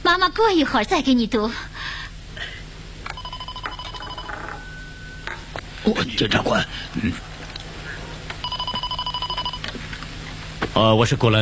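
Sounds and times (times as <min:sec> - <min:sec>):
speech: 0:00.1 - 0:01.7, 0:05.8 - 0:07.3, 0:10.8 - 0:11.4
electronic telephone ringing: 0:03.1 - 0:05.5, 0:08.4 - 0:09.8.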